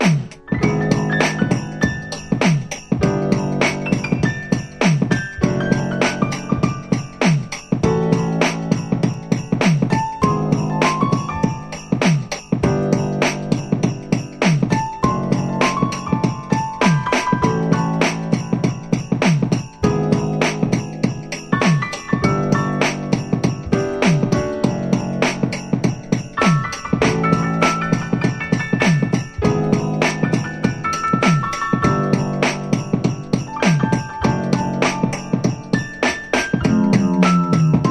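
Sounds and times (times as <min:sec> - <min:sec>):
piano rag music: 0:00.0 - 0:37.9.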